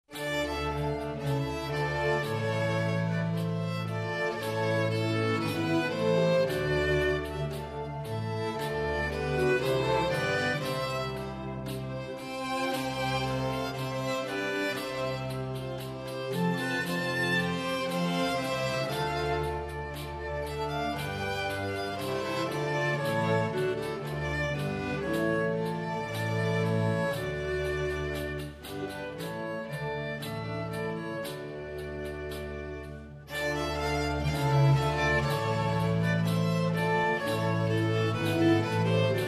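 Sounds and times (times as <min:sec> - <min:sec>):
pavane music: 0:00.0 - 0:39.2.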